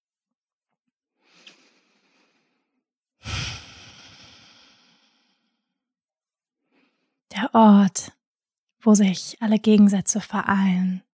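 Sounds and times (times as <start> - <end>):
deep slow breathing in and out during a guided heart-centre meditation: 1.2 - 5.8, 6.6 - 7.3
speech: 7.4 - 8.2, 8.8 - 11.1.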